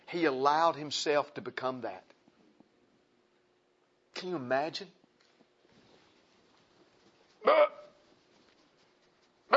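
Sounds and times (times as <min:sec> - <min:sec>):
speech: 0:00.1 - 0:02.1, 0:04.2 - 0:05.0, 0:07.4 - 0:07.8
voice imitating a baby's burp: 0:07.5 - 0:07.9.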